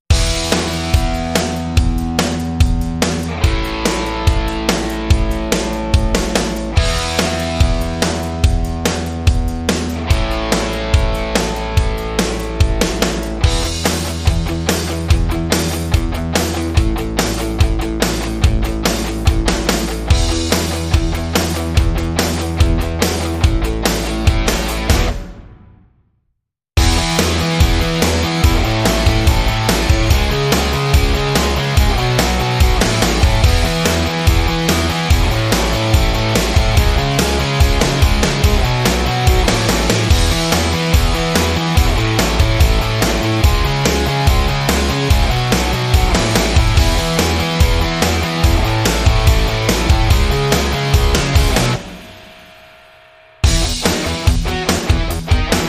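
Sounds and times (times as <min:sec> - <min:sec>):
upbeat music without lead guitar or synth: 0:00.1 - 0:25.4, 0:26.8 - 0:52.6, 0:53.4 - 0:55.6.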